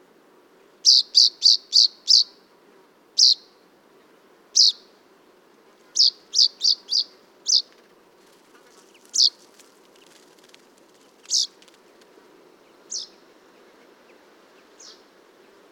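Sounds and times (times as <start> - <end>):
common chaffinch Fringilla coelebs giving sharp high calls: 0.8 - 2.4, 3.2 - 3.6, 4.6 - 4.9, 6.0 - 7.7, 9.1 - 9.4, 12.9 - 13.2.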